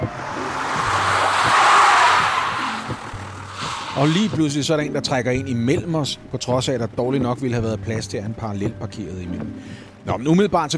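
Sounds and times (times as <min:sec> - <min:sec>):
car tires skidding while braking hard in morning traffic: 0:00.0 - 0:05.2
low car engine rumble: 0:00.0 - 0:05.5
speech: 0:04.0 - 0:10.7.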